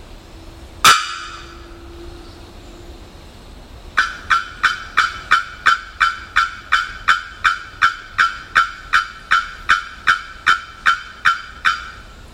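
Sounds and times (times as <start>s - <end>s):
bearded bellbird ringing clank notes: 4.0s - 12.2s.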